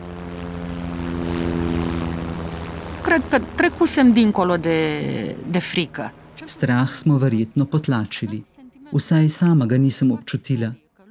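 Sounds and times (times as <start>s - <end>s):
helicopter engine and rotor droning: 0.0s - 8.3s
speech: 3.1s - 10.8s.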